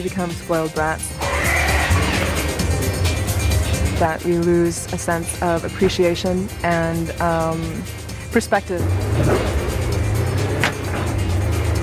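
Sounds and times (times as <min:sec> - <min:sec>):
speech: 0:00.0 - 0:01.3, 0:04.0 - 0:09.5
road rumble: 0:00.0 - 0:11.8
fast electric sports car driving: 0:01.1 - 0:04.4, 0:08.8 - 0:11.8.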